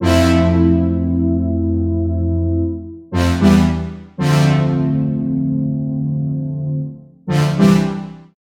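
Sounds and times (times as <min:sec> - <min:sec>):
cool synth brass in C major: 0:00.0 - 0:08.4.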